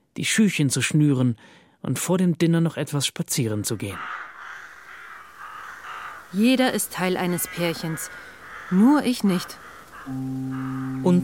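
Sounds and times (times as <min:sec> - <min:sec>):
speech: 0:00.2 - 0:04.3, 0:06.3 - 0:11.2
several crows cawing in harsh rasping calls: 0:03.8 - 0:11.2.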